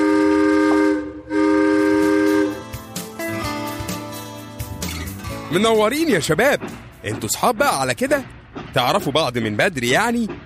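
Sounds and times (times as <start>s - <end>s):
children's amusement train whistle blasts: 0.0s - 2.7s
speech: 5.5s - 10.4s.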